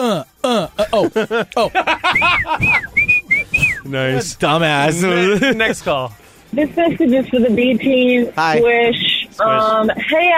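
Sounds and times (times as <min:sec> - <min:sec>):
chuckling vocal sounds: 0:00.0 - 0:03.4
speech: 0:00.9 - 0:02.8, 0:03.9 - 0:10.3
person whistling: 0:02.0 - 0:03.9.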